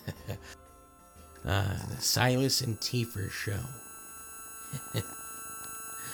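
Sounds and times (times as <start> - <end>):
high-pitched ringing tone: 0.3 - 6.1
speech: 1.4 - 3.8, 4.9 - 5.2.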